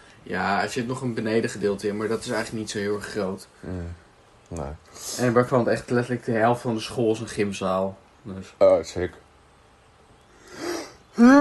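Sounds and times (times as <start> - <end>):
speech: 0.3 - 9.2, 11.2 - 11.3
brief breathy yawn with faint voiced groan: 10.4 - 11.3.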